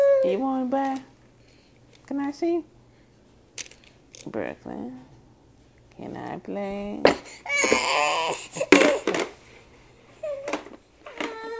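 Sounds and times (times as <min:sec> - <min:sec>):
speech: 0:00.2 - 0:01.1, 0:02.1 - 0:02.7, 0:04.2 - 0:05.1, 0:06.0 - 0:09.2
child crying in a tantrum: 0:07.5 - 0:09.1, 0:10.2 - 0:11.5.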